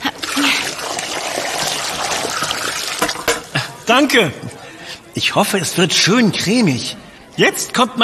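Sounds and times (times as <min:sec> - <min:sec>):
cooking water poured off a pot of boiled root vegetable into a sink: 0:00.0 - 0:03.5
speech: 0:03.9 - 0:04.5, 0:05.2 - 0:08.0.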